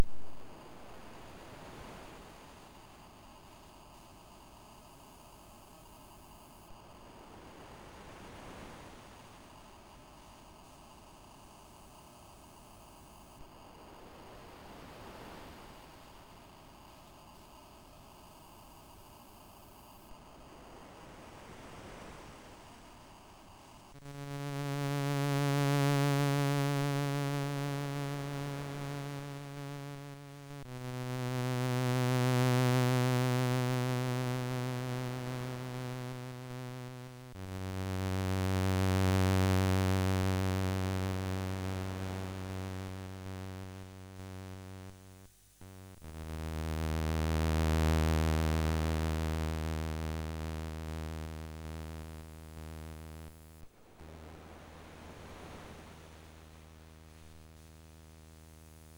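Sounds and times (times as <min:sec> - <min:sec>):
MOS6581R2 chip synth mechanical waves: 0:24.1 - 0:58.9.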